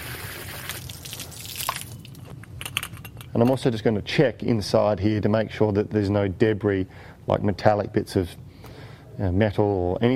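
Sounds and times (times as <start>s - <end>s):
hose spraying water into a hollow metal motor rotor: 0.0s - 1.4s
water dripping: 0.4s - 2.3s
speech: 3.3s - 8.5s, 9.2s - 10.1s.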